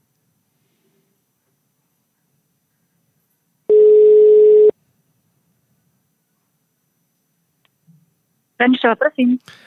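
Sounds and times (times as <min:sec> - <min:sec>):
ringing tone of an outgoing phone call: 0:03.7 - 0:04.7
speech: 0:08.6 - 0:09.6.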